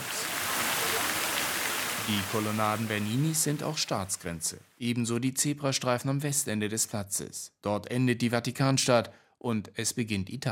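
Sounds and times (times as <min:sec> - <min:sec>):
fountain water splashing: 0:00.0 - 0:04.6
speech: 0:02.1 - 0:10.4.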